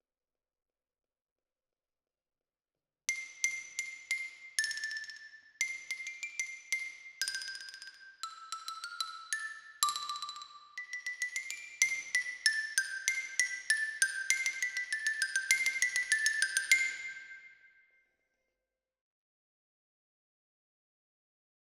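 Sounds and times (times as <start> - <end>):
xylophone close: 3.1 - 17.3.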